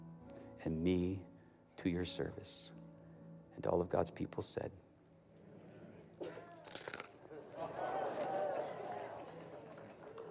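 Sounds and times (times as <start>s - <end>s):
speech: 0.6s - 2.8s, 3.6s - 4.8s
locust being bitten and crunched: 6.1s - 7.2s
laughter: 7.2s - 10.2s.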